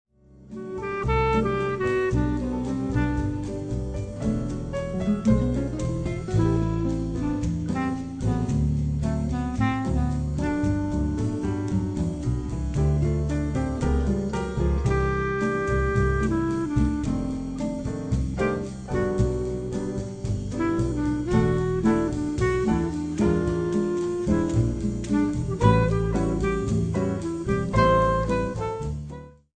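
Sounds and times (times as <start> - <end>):
bossa nova music: 0.2 - 29.5.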